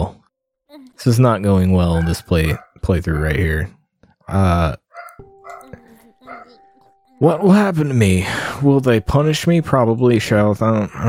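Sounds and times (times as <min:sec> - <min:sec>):
speech: 0:00.8 - 0:04.8, 0:07.2 - 0:11.0
dog barking and snarling: 0:02.0 - 0:03.3, 0:04.8 - 0:06.6.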